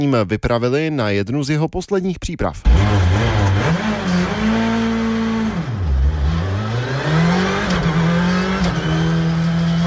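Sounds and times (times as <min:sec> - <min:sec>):
speech: 0:00.0 - 0:03.9
rally car engine revving through gear changes during a test drive: 0:02.6 - 0:09.8.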